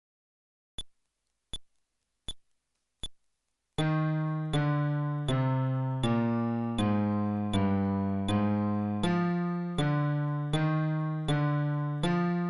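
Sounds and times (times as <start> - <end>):
fretless bass playing a scale at tempo 80: 3.8 - 12.4.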